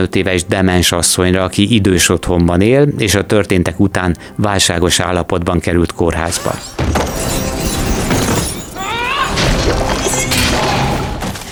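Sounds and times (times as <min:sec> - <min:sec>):
speech: 0:00.0 - 0:07.8
movie robot fight metallic crashing and smashing: 0:06.3 - 0:11.4
clanging impacts: 0:06.3 - 0:11.5.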